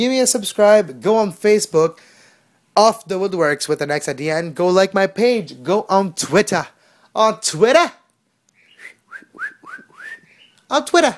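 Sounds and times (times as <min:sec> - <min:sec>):
speech: 0:00.0 - 0:02.1, 0:02.8 - 0:08.0, 0:10.7 - 0:11.1
person whistling chirpy notes imitating a bird: 0:08.6 - 0:10.7.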